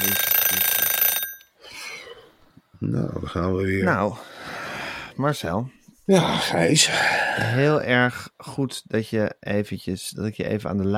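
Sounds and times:
alarm clock ringing in a metallic clatter: 0:00.0 - 0:01.6
speech: 0:02.8 - 0:04.3, 0:05.2 - 0:10.9.

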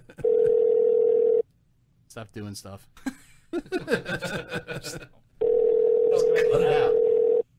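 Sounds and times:
phone line ringing tone as a call is placed: 0:00.2 - 0:01.4, 0:05.4 - 0:07.4
speech: 0:02.2 - 0:05.2
laughter: 0:03.0 - 0:05.2.

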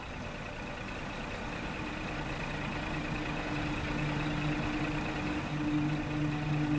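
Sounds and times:
bus engine rumbling as it pulls up: 0:00.0 - 0:06.7
faint higher whine: 0:01.8 - 0:06.7.

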